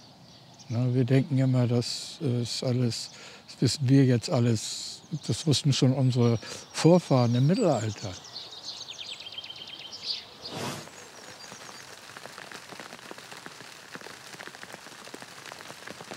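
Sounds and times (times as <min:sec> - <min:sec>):
speech: 0:00.7 - 0:08.3
hail pelting a hard surface: 0:10.9 - 0:16.1.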